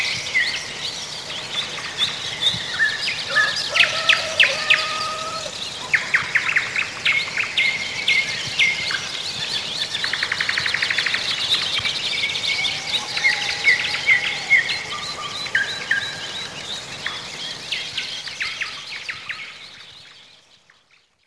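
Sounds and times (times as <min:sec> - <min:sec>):
songbirds singing a morning chorus in spring: 0:00.0 - 0:21.2.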